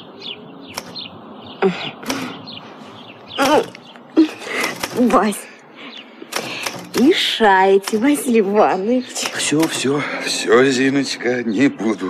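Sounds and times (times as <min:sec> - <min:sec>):
sparrows chirping: 0:00.0 - 0:12.0
creaking or rustling: 0:00.8 - 0:01.1, 0:03.3 - 0:05.5, 0:06.2 - 0:10.2
speech: 0:01.6 - 0:02.2, 0:03.4 - 0:03.8, 0:05.0 - 0:05.5, 0:07.0 - 0:12.0.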